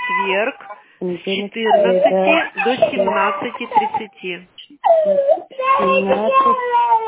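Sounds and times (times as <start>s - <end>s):
baby crying: 0.0s - 0.8s, 1.6s - 4.1s, 4.8s - 7.0s
speech: 0.2s - 6.9s.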